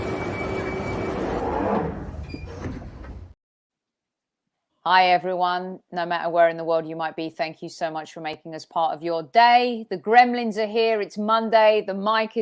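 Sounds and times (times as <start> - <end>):
underground train doors sliding: 0.2 - 3.4
speech: 4.9 - 12.4.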